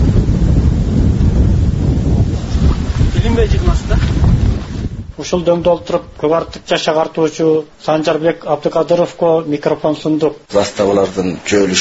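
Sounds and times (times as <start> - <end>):
cold wind blowing across a hilltop at the edge of a village: 0.0 - 6.6
speech: 3.4 - 4.1, 5.2 - 11.8.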